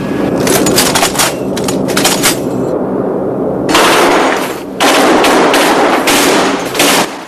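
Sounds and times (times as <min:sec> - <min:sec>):
steady low engine drone: 0:00.0 - 0:07.2
aircraft machine-gun fire during a test firing: 0:03.7 - 0:07.2.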